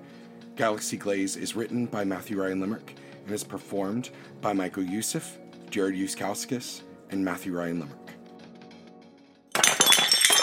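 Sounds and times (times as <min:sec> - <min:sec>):
speech: 0:00.6 - 0:08.1
ceramic pottery crashing and shattering on a hard studio floor: 0:09.5 - 0:10.4
ceramic shards tinkling and scattering: 0:09.6 - 0:10.4.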